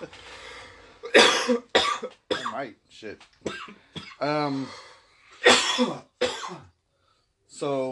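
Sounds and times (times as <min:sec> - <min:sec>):
speech: 0:00.0 - 0:00.4, 0:01.1 - 0:06.7, 0:07.5 - 0:07.9
person coughing: 0:01.0 - 0:02.7, 0:03.5 - 0:04.4, 0:05.4 - 0:06.7.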